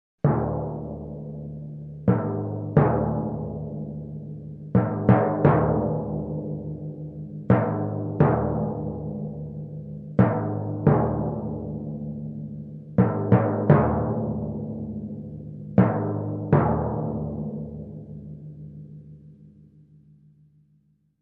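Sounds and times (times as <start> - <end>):
dark and suspenseful timpani drums: 0.2 - 19.1.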